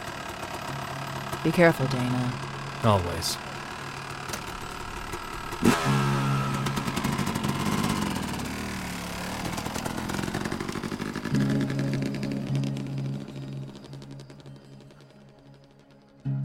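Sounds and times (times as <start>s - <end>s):
motorcycle engine starting and revving: 0.0s - 16.4s
speech: 1.4s - 3.5s.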